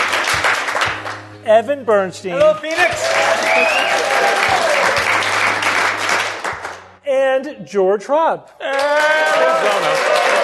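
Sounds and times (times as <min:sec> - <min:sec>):
live audience applauding in Phoenix: 0:00.0 - 0:01.2, 0:02.4 - 0:06.9, 0:08.6 - 0:10.4
speech: 0:01.5 - 0:05.1, 0:07.1 - 0:10.4.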